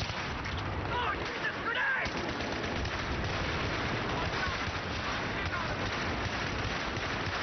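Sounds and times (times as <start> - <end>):
deep rumbling artillery blasts: 0.0 - 7.4
rapid battle gunfire crackling: 0.0 - 7.4.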